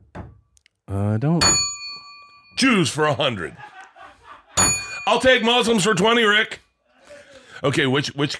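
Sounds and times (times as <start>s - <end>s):
speech: 1.0s - 1.7s, 2.6s - 3.8s, 5.1s - 6.6s, 7.6s - 8.3s
bell struck with bright metallic ring: 1.4s - 3.4s, 4.6s - 6.2s
laughter: 3.0s - 5.8s.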